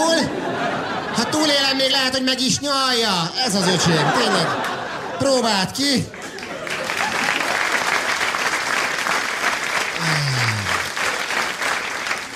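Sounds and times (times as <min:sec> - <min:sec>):
laughter: 0:00.0 - 0:02.1, 0:03.4 - 0:07.9, 0:10.0 - 0:11.2
speech: 0:01.5 - 0:06.2
crowd applauding: 0:06.1 - 0:12.3.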